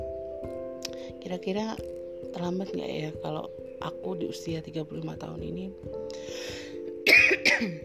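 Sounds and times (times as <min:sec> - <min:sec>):
speech: 0:01.2 - 0:06.6, 0:07.4 - 0:07.8
quick harsh coughs: 0:07.0 - 0:07.8.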